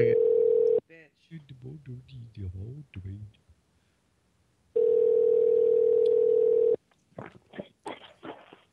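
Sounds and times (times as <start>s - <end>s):
loud steady telephone tone: 0.0s - 0.8s, 4.8s - 6.8s
speech: 1.9s - 3.4s.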